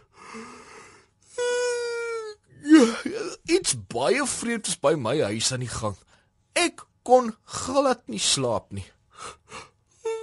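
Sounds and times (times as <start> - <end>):
person yawning: 0.0 - 3.4, 9.2 - 10.2
speech: 3.6 - 6.1, 6.7 - 9.4.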